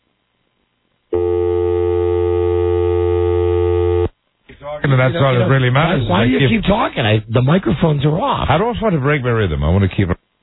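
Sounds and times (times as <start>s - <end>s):
telephone dial tone: 1.1s - 4.1s
speech: 4.9s - 10.2s.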